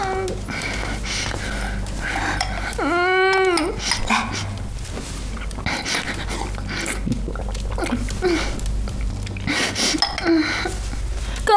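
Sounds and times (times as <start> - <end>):
girl crying with tearful whimpers and sobs: 0.0 - 0.4, 2.7 - 4.5, 7.8 - 8.6, 10.0 - 10.9
constant low hum: 0.0 - 11.5.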